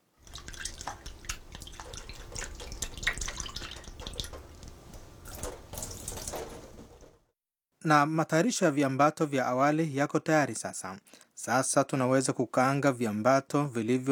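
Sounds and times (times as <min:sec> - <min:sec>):
running tap water splashing on raisins in a strainer: 0:00.0 - 0:07.1
speech: 0:07.8 - 0:14.1.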